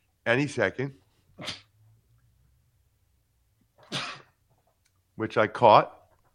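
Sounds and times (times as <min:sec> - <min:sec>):
speech: 0:00.2 - 0:01.6, 0:05.2 - 0:06.0
sneezes: 0:01.4 - 0:01.7, 0:03.8 - 0:04.4.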